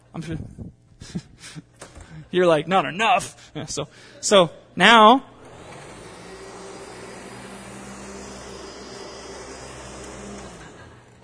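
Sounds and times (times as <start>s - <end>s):
speech: 0.2s - 1.3s, 2.3s - 5.3s
vacuum cleaner running on a church floor: 5.3s - 11.2s.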